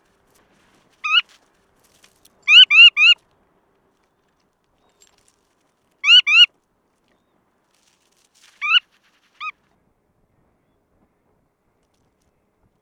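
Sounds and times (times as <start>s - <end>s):
red knot Calidris canutus roselaari calling: 1.0s - 1.4s, 2.4s - 3.2s, 6.0s - 6.5s, 8.6s - 8.9s.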